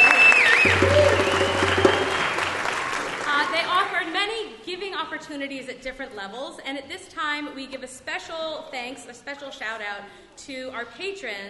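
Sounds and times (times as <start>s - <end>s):
room full of people applauding: 0.0s - 4.0s
speech: 5.0s - 11.4s.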